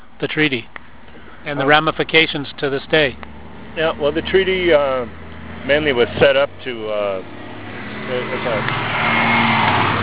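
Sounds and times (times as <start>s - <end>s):
speech: 0.2s - 0.8s, 1.4s - 7.4s, 8.1s - 9.2s
large vehicle engine rumbling past: 2.8s - 10.0s.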